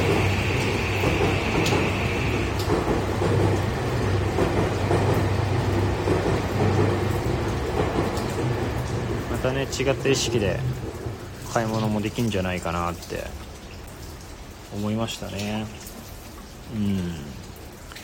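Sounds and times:
train arriving at a station with a rumbling roar: 0.0 - 12.2
speech: 9.6 - 10.8, 11.6 - 13.4, 14.7 - 15.9, 16.7 - 17.4.

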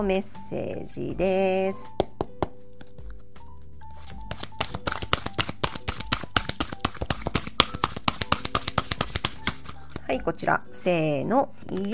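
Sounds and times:
speech: 0.0 - 2.1, 10.2 - 11.9
oracle cards being shuffled and one drawn: 2.8 - 10.1, 11.6 - 11.9.

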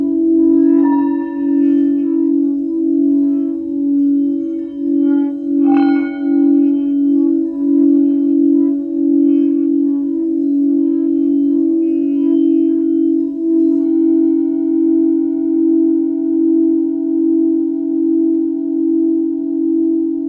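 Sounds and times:
higher ringing tone: 0.0 - 19.1
Tibetan singing bowl humming: 0.0 - 20.2
soft strikes on a Tibetan singing bowl: 0.4 - 13.2.

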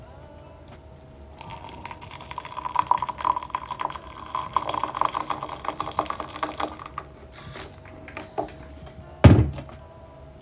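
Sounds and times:
hot water poured into a small bowl for matcha tea: 1.4 - 7.8.

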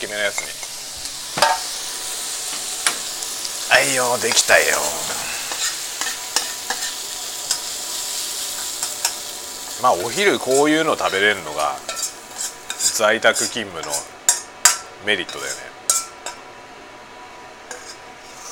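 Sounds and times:
speech: 0.0 - 0.7, 3.8 - 5.3, 9.8 - 11.9, 13.0 - 14.2, 15.0 - 15.8
back fat sizzling in a hot pan during stir-frying: 0.0 - 16.5, 17.6 - 18.4.

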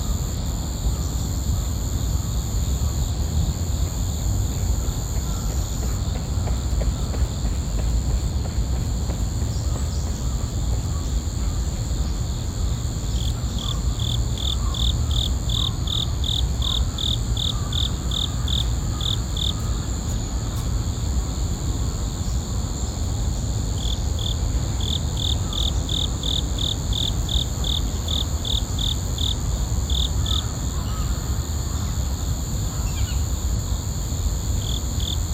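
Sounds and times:
insects trilling in chorus in a park: 0.0 - 35.3.

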